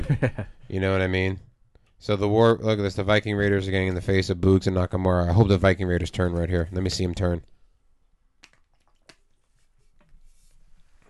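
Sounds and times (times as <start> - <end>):
speech: 0.1 - 7.5
person taking a swig of water: 8.4 - 9.4.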